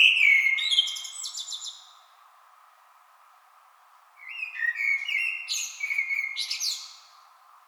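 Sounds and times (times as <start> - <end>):
Common blackbird warbling song: 0.0 - 1.9, 4.2 - 7.1.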